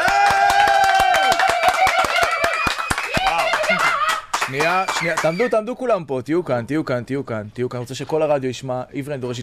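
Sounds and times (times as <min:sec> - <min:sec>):
audience clapping in a radio studio: 0:00.0 - 0:05.5
voices calling out and cheering: 0:00.0 - 0:05.7
speech: 0:04.5 - 0:09.4.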